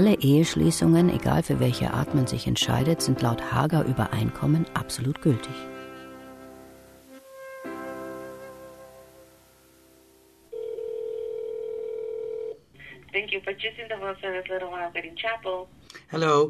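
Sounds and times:
speech: 0:00.0 - 0:05.7, 0:13.4 - 0:16.4
telephone handset dial tone: 0:10.6 - 0:12.6.

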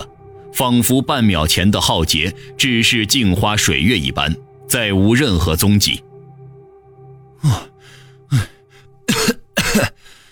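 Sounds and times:
low steady hum: 0:00.0 - 0:10.3
speech: 0:00.6 - 0:06.1, 0:07.4 - 0:07.7, 0:08.3 - 0:08.5
harsh coughs from a pale-faced person: 0:09.0 - 0:10.1.

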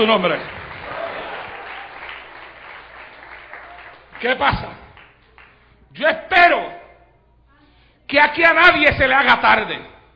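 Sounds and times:
speech: 0:00.0 - 0:00.6, 0:04.2 - 0:04.8, 0:05.9 - 0:06.8, 0:08.1 - 0:09.9
church congregation applauding: 0:00.0 - 0:05.7.

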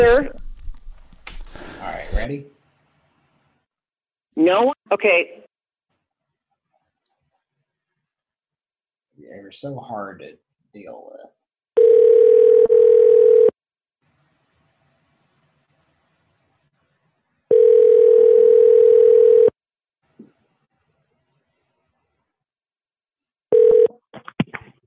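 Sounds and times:
speech: 0:00.0 - 0:00.4, 0:02.2 - 0:02.6, 0:04.4 - 0:05.4, 0:09.2 - 0:11.5
telephone tone on a phone line: 0:11.8 - 0:13.5, 0:17.5 - 0:19.6, 0:23.5 - 0:23.9.

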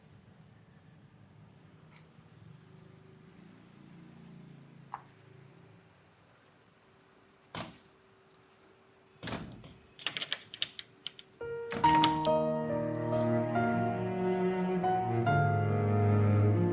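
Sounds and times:
door being opened, latch clicks: 0:09.2 - 0:12.4
sustained tonal background: 0:10.0 - 0:16.7.

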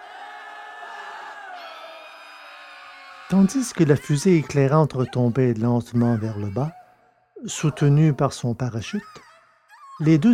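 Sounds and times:
crowd howling in pain and terror in a cave: 0:00.0 - 0:05.3
speech: 0:03.3 - 0:06.8, 0:07.4 - 0:09.2, 0:10.0 - 0:10.3.

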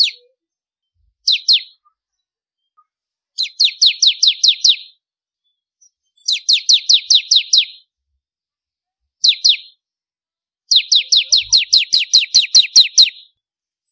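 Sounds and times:
bar-winged prinia chipping: 0:00.0 - 0:00.4, 0:01.2 - 0:02.0, 0:02.8 - 0:05.0, 0:05.8 - 0:07.9, 0:09.2 - 0:09.8, 0:10.7 - 0:13.4.

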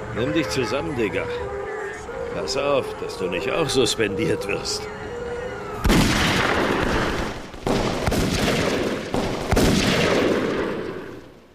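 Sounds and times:
speech: 0:00.2 - 0:01.6, 0:02.4 - 0:05.1
heavy crackling gunfire in a radio drama: 0:05.8 - 0:11.5.

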